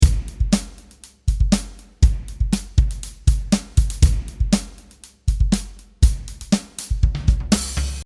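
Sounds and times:
dry drum kit: 0:00.0 - 0:08.0.

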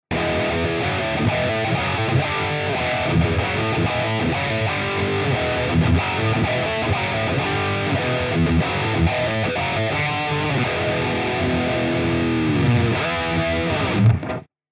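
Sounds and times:
heavy rhythm: 0:00.1 - 0:14.4.

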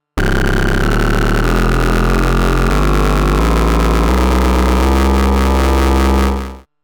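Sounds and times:
dual oscillator slice synthesizer tones with varying key track values: 0:00.0 - 0:06.6.

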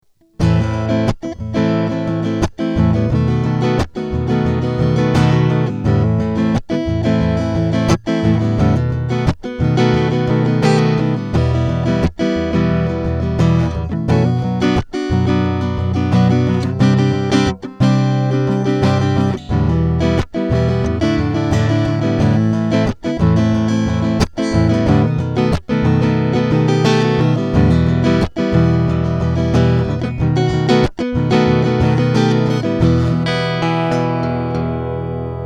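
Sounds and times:
Ibanez TCM50 acoustic guitar strumming with mid EQ: 0:00.2 - 0:35.4.

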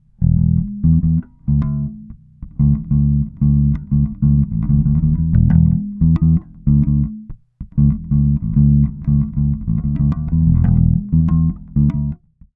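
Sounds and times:
slapped electric bass: 0:00.0 - 0:12.5.

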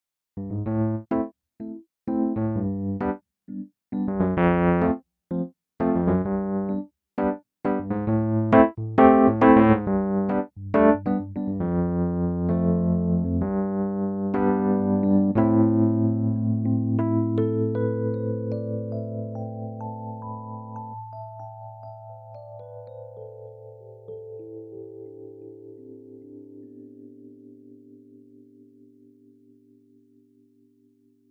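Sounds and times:
Rhodes electric piano with tremolo: 0:00.5 - 0:28.2.

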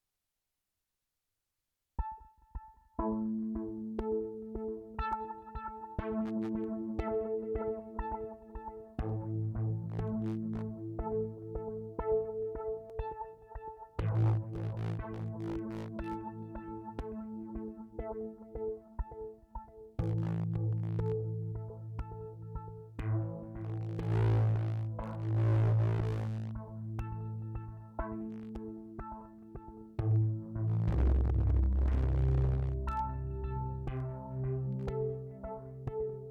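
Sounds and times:
fat synth through pedal delay, phaser and tape hardware: 0:03.0 - 0:36.2.

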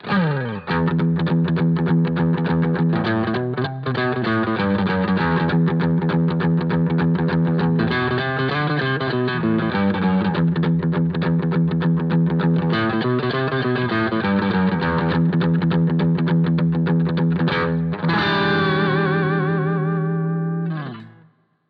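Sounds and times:
Strat electric guitar crunch through Cube amp: 0:00.0 - 0:21.4.

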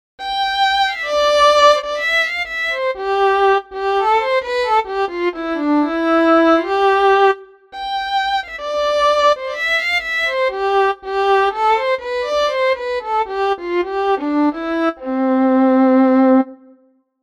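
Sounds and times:
Celtic fiddle: 0:00.2 - 0:16.6.

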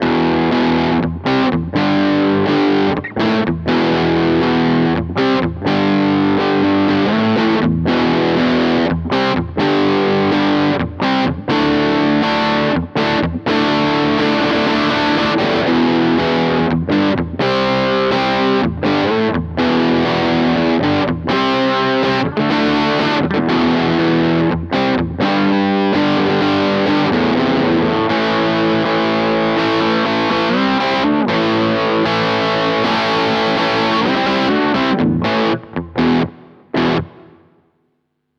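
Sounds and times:
burst of moderate gain guitar on a bridge pickup: 0:00.0 - 0:37.7.

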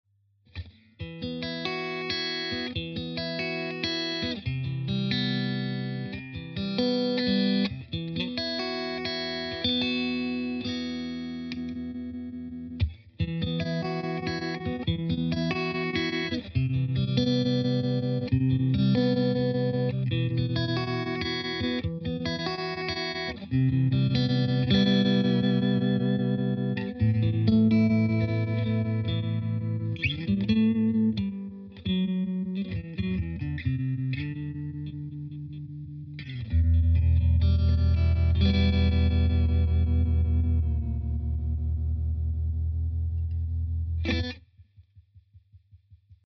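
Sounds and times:
Crazy Tube Circuits Stoned Hz guitar effects pedal: 0:00.5 - 0:44.5.

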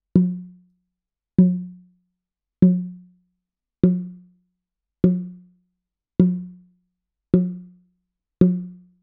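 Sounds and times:
bongo: 0:00.1 - 0:00.7, 0:01.4 - 0:02.0, 0:02.6 - 0:03.2, 0:03.8 - 0:04.4, 0:05.0 - 0:05.6, 0:06.2 - 0:09.0.

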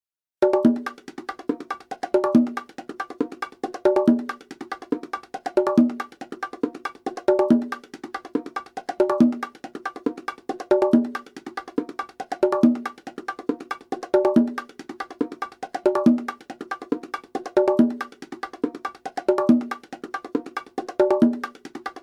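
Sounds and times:
neutral congas: 0:00.4 - 0:22.0.

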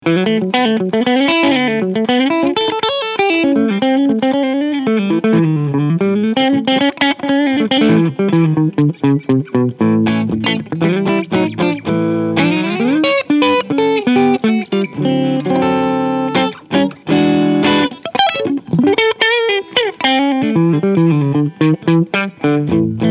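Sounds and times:
Framus Diablo II Supreme electric guitar with both pickups in humbucker mode: 0:00.0 - 0:23.0.

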